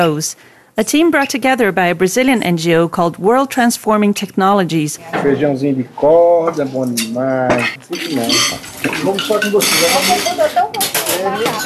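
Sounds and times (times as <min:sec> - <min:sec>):
speech: 0:00.0 - 0:11.6
dishes and cutlery clattering at a kitchen sink: 0:06.8 - 0:11.6.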